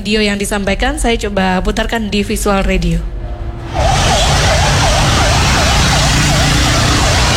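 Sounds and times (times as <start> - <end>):
speech: 0.0 - 3.9
loud rumbling traffic roar in the street: 1.0 - 7.3
fire engine siren wailing: 3.2 - 7.3.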